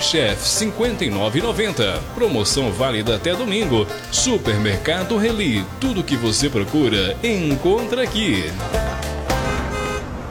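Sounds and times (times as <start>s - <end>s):
busy city street traffic engines rumbling: 0.0s - 10.3s
speech: 0.1s - 9.1s
car horn honking in short honks: 9.3s - 10.3s.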